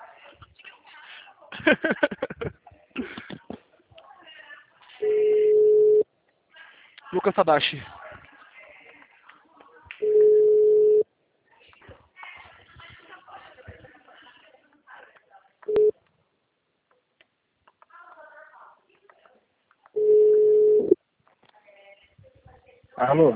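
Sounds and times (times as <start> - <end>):
laughter: 1.5 - 3.7
speech: 1.6 - 2.6, 7.2 - 8.0
telephone line tones from a call that fails to connect: 5.0 - 6.0, 10.0 - 11.0, 15.7 - 16.0, 20.0 - 21.0.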